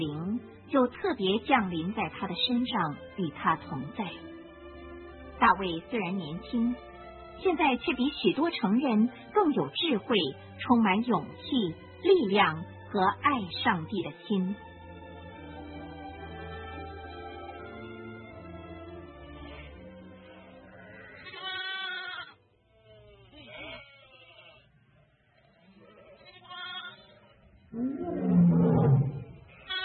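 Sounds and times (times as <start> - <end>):
speech: 0.0 - 4.4, 5.4 - 14.7
lamb bleating: 19.4 - 24.7, 25.4 - 29.8
loud rumbling lion roar: 27.7 - 29.5.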